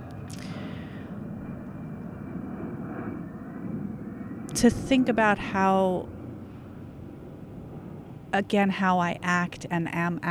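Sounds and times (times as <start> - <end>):
propeller airplane droning overhead: 0.0 - 10.2
speech: 4.6 - 6.2, 8.3 - 10.2.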